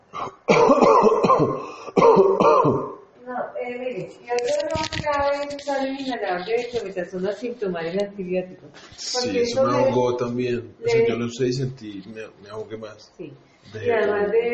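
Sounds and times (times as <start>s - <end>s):
patient clearing their throat during a medical examination: 0.1s - 3.0s
patient coughing during a medical examination: 0.1s - 3.0s
speech: 4.0s - 14.5s.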